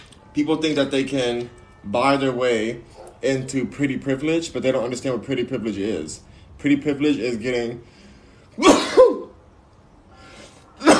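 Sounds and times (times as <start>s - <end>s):
speech: 0.4s - 8.0s
faint breath: 7.8s - 8.6s, 10.1s - 10.8s
person sneezing caused by cayenne pepper: 8.6s - 9.3s, 10.6s - 10.9s.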